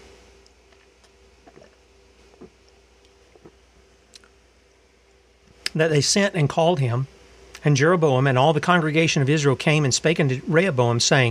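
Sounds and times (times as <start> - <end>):
low hum: 0.0 - 11.2
person sipping and swallowing water: 0.5 - 4.4
speech: 5.8 - 11.2.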